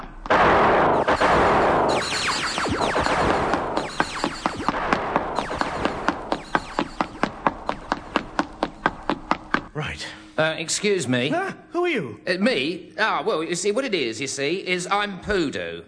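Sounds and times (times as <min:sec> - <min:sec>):
gunshots: 0:00.3 - 0:09.5
speech: 0:10.4 - 0:15.8.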